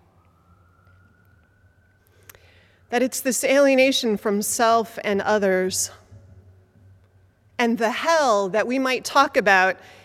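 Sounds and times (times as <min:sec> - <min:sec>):
ambulance siren wailing: 0:00.0 - 0:02.9
speech: 0:02.9 - 0:06.0, 0:07.6 - 0:10.0.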